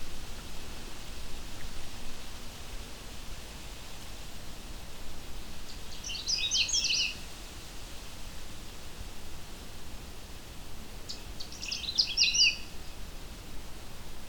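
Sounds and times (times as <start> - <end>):
steady hiss: 0.0 - 14.2
male Canada Warbler singing in a swamp: 5.9 - 7.2, 11.1 - 12.7.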